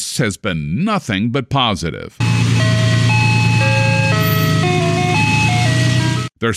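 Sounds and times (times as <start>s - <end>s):
speech: 0.2s - 2.3s, 6.4s - 6.5s
low engine rumble of an ice cream truck: 2.2s - 6.3s
tinny electronic ice cream truck jingle: 2.2s - 6.3s.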